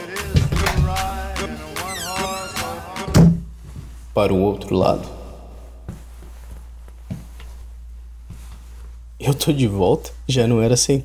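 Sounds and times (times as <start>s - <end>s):
door shutting with a dull heavy thud: 0.4s - 3.5s
speech: 4.2s - 5.2s, 9.4s - 11.0s.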